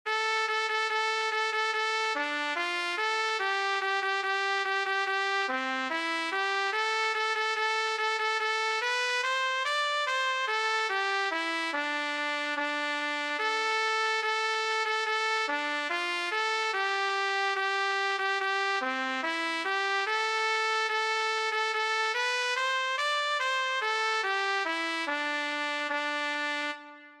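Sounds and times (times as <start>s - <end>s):
B-flat cornet playing a sea shanty: 0.1s - 27.1s.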